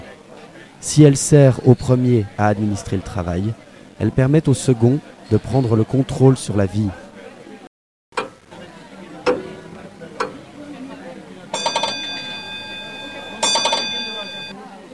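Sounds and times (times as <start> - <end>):
speech: 0.8 - 7.0
mechanical clock ticking: 8.2 - 10.8, 11.5 - 14.5
clock ringing metallic chime: 9.2 - 14.6.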